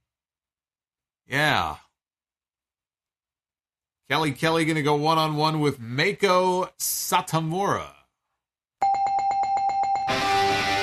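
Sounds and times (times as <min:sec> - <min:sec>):
speech: 0:01.3 - 0:01.8, 0:04.1 - 0:08.0
loud electric ring bell ringing: 0:08.8 - 0:10.8.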